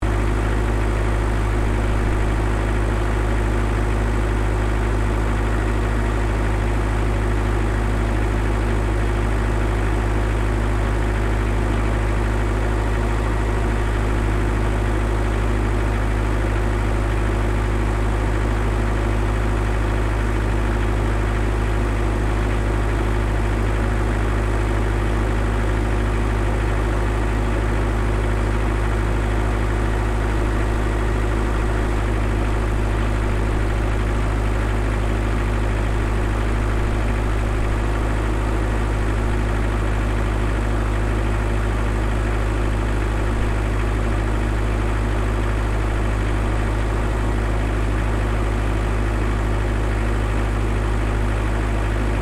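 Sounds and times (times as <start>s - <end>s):
Kubota GV1120 industrial generator engine operating: 0.0s - 52.2s.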